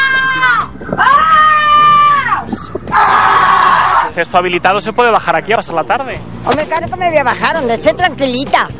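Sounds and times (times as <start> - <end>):
children shrieking in a plaza: 0.0 - 4.2
people shouting in a plaza: 0.0 - 4.2
speech: 4.2 - 8.7.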